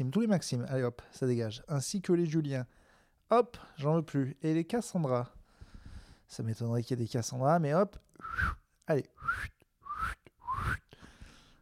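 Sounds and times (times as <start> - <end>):
speech: 0.0 - 5.4, 6.3 - 10.8
person attempting funny rising whistles with the mouth: 8.2 - 11.0.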